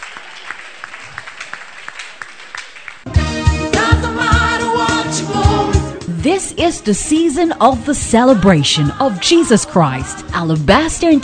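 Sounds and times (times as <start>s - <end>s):
crowd clapping: 0.0s - 3.2s
loud rhythmic music with a steady beat: 3.1s - 11.2s
speech: 6.2s - 11.2s.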